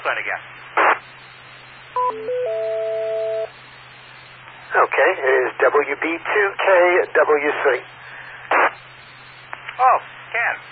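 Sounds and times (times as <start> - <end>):
speech: 0.0 - 1.2, 2.1 - 2.7, 4.7 - 8.0
hissy humming radio channel: 0.0 - 2.0, 3.4 - 10.7
electronic DTMF touch-tone beeps over radio: 2.0 - 3.5.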